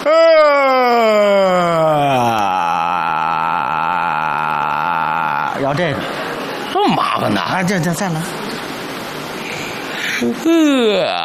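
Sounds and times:
deliberate loud voiced yawn with long drawn-out ending: 0:00.0 - 0:05.6, 0:10.0 - 0:11.2
speech: 0:07.2 - 0:08.4, 0:10.2 - 0:11.2.

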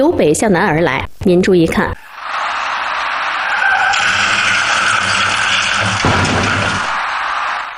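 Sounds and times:
speech: 0:00.0 - 0:02.0
silver car skidding with tire hiss and engine on a ring road service road: 0:02.0 - 0:07.7.

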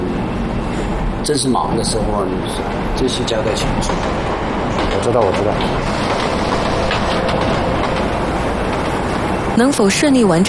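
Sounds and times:
train rumbling along rails: 0:00.0 - 0:10.4
speech: 0:01.2 - 0:04.4, 0:05.0 - 0:06.4, 0:07.1 - 0:07.6, 0:09.6 - 0:10.4
faint clickety-clack of train wheels: 0:01.6 - 0:10.4.

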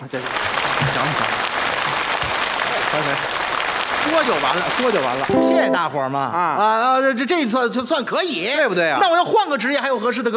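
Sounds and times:
speech: 0:00.0 - 0:01.4, 0:02.9 - 0:10.3
audience applause at a stage performance: 0:00.0 - 0:05.4.

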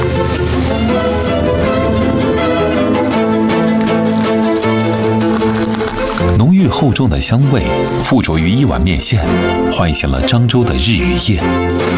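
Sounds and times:
red shallots frying in a pot of oil: 0:00.0 - 0:08.4
music: 0:00.0 - 0:11.9
speech: 0:06.8 - 0:11.9.

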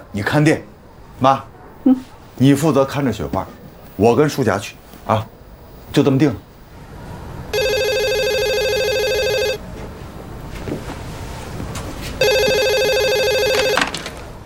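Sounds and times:
low hum: 0:00.0 - 0:14.4
speech: 0:00.1 - 0:06.5
telephone ringing in electronic bursts: 0:07.5 - 0:09.6, 0:12.2 - 0:14.1.

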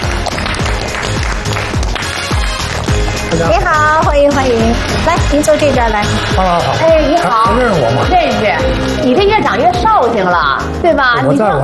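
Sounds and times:
studio audience applause welcoming a guest: 0:00.0 - 0:08.9
speech: 0:03.3 - 0:11.6.

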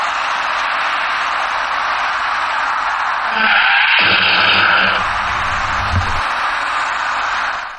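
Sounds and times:
road noise: 0:00.1 - 0:07.7
braking tires screeching on a passenger car: 0:00.6 - 0:07.7
low rumbling noise of cars stopping: 0:04.0 - 0:07.7
wind noise: 0:05.0 - 0:06.2.

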